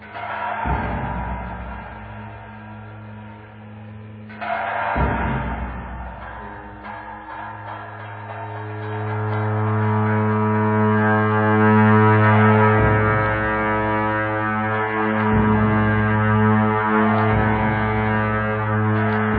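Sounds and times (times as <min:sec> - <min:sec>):
pair of ritual horns played in alternation during a monastic ceremony: 0:00.0 - 0:19.3.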